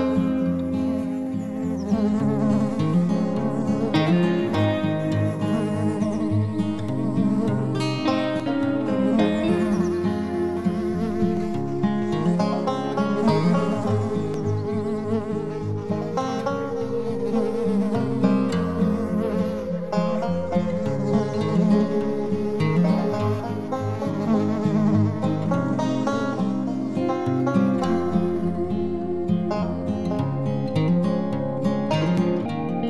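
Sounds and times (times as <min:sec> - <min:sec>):
dense swarm of bees buzzing: 0:00.0 - 0:32.8.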